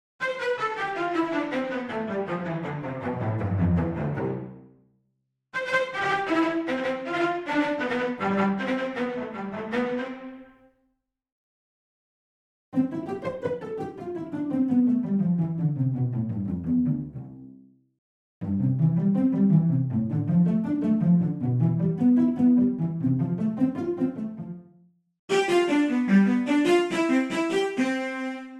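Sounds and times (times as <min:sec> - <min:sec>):
concert cellos playing: 0:00.4 - 0:04.6, 0:05.7 - 0:10.4, 0:12.8 - 0:17.4, 0:18.4 - 0:24.5, 0:25.3 - 0:28.5.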